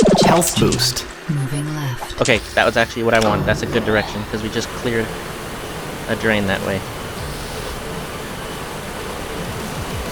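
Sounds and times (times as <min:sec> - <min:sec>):
speech: 0:00.4 - 0:05.4, 0:06.1 - 0:07.0
faint low rumbling: 0:02.4 - 0:08.4
rushing water jet stream in video game: 0:02.4 - 0:10.1.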